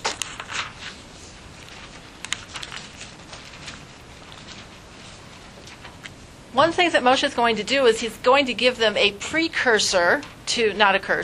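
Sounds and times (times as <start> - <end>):
paper pages being flipped: 0.0 - 6.2
speech: 6.6 - 11.2.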